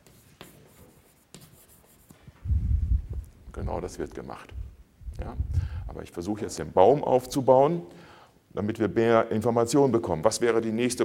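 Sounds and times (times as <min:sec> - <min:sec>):
writing strokes on a board during a lecture: 0:00.0 - 0:02.4
low rumble: 0:02.4 - 0:06.0
speech: 0:03.6 - 0:11.0.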